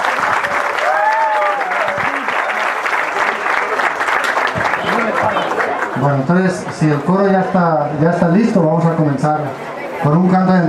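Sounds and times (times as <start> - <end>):
congregation clapping at an outdoor Mass: 0.0 - 7.1
speech: 6.0 - 10.6.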